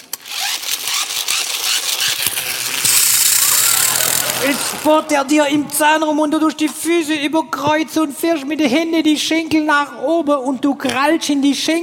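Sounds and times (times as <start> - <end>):
dentist's drill rattling, buzzing and whining: 0.2 - 5.2
speech: 4.4 - 11.8.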